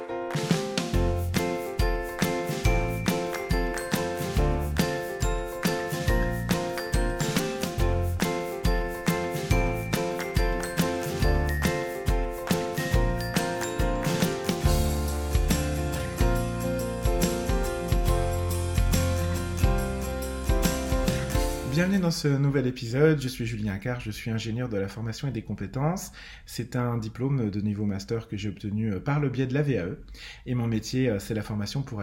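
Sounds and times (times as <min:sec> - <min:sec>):
steady driving beat with bass: 0:00.3 - 0:21.9
bright chiming bell-like notes of a theme jingle: 0:01.8 - 0:14.9
speech: 0:21.9 - 0:32.0.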